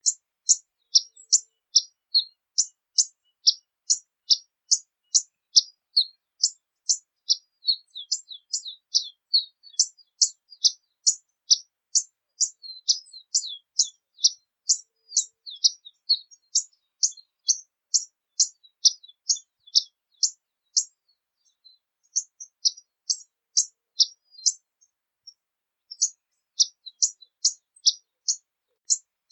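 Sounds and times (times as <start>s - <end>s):
violet-eared hummingbird singing: 0.0s - 24.6s, 25.2s - 29.3s.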